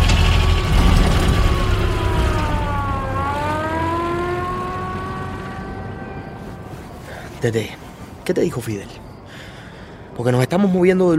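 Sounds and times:
dense mechanical rumble: 0.0s - 6.3s
car engine humming while turning around: 0.0s - 8.2s
speech: 7.4s - 9.0s, 10.2s - 11.1s.

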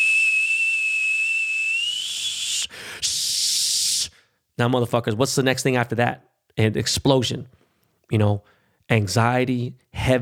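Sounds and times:
whistling teapot left too long on the stove: 0.0s - 2.7s
speech: 4.6s - 10.1s.

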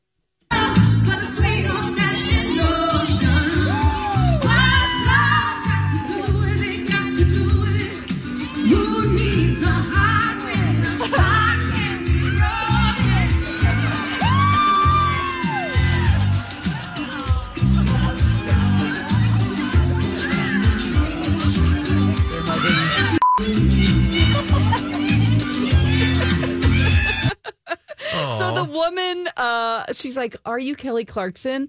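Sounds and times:
woman singing a pop song: 0.5s - 26.0s, 28.1s - 31.6s
lively crowd laughing and cheering: 3.6s - 28.9s
speech: 29.9s - 31.6s.

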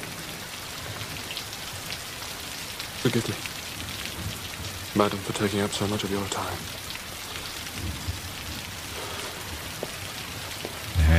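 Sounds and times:
steady rain pattering on a surface: 0.0s - 11.1s
speech: 3.0s - 3.6s, 5.0s - 6.8s.

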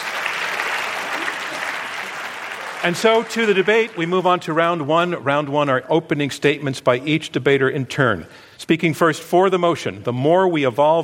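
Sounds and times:
sizable audience applause: 0.0s - 4.7s
speech: 2.8s - 11.0s.

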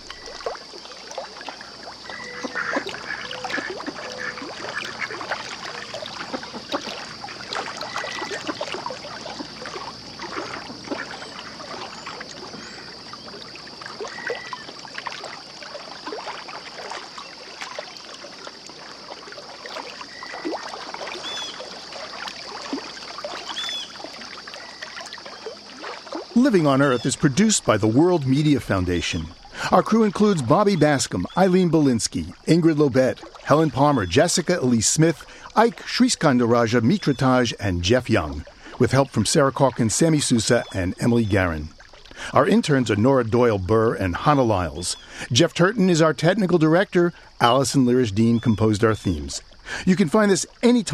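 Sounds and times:
tidal water of the Hudson River lapping at Salisbury Marsh: 0.0s - 50.9s
speech: 26.5s - 50.9s.

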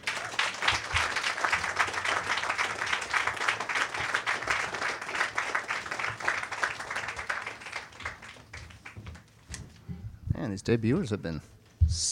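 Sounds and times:
sustained audience applause for a debuting performer: 0.0s - 9.2s
speech: 10.6s - 12.1s.

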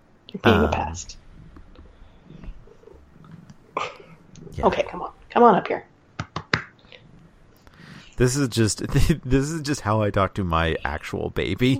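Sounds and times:
speech: 0.3s - 1.2s, 4.6s - 5.9s, 8.2s - 11.7s
cat purring while trying to eat headphones: 1.1s - 5.3s.

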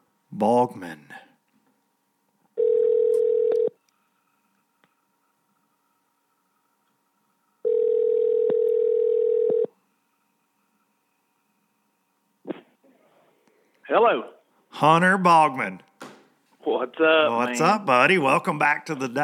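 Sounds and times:
speech: 0.3s - 1.2s, 14.0s - 15.9s, 16.7s - 19.2s
landline telephone buzzing ring tones through the handset: 2.6s - 3.8s, 7.6s - 9.8s.

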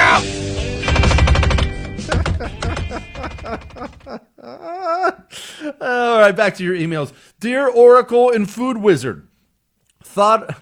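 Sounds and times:
failing window actuators rattling: 0.6s - 4.1s
faulty window actuators clicking: 0.8s - 4.1s
laughter: 2.0s - 5.3s
speech: 6.3s - 9.3s, 10.1s - 10.5s.

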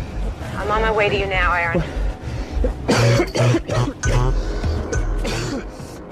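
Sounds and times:
speech: 0.7s - 2.0s, 2.6s - 4.5s
harsh throaty coughs: 2.6s - 5.9s.

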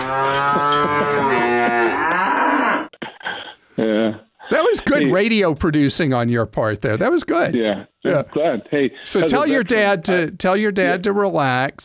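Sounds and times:
cow mooing with a long drawn-out bellow: 0.0s - 2.9s
laughter: 0.5s - 1.8s
speech: 5.0s - 11.8s.

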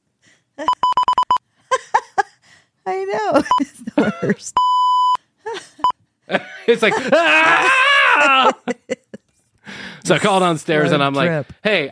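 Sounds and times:
laughter: 1.7s - 2.4s, 3.2s - 4.6s, 5.5s - 9.2s
speech: 3.3s - 5.0s, 6.7s - 8.6s, 10.1s - 11.9s
smoke detector short sharp electronic beeps: 4.6s - 5.2s.

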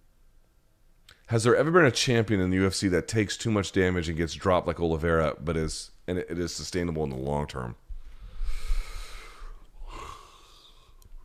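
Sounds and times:
speech: 1.3s - 7.8s
person yawning: 8.4s - 11.0s.

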